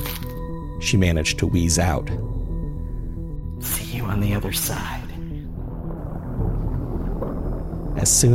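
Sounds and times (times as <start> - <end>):
speech: 0.8 - 2.3, 3.6 - 5.0, 8.0 - 8.3
deep steady rumble: 1.9 - 8.3.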